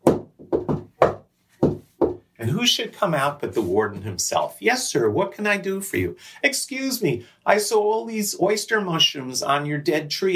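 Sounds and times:
knocking on a door: 0:00.0 - 0:02.2
speech: 0:02.4 - 0:10.3.

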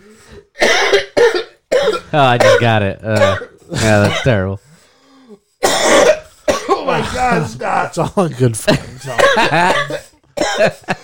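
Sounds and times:
person coughing hard: 0:00.4 - 0:04.4, 0:05.6 - 0:07.5, 0:08.7 - 0:11.0
speech: 0:02.1 - 0:04.7, 0:07.0 - 0:11.0
laughter: 0:06.8 - 0:09.9, 0:10.6 - 0:11.0.

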